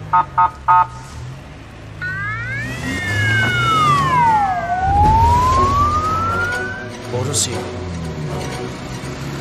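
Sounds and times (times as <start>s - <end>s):
speech: 0.2s - 1.0s, 7.3s - 8.9s
car alarm chirps: 2.0s - 6.9s.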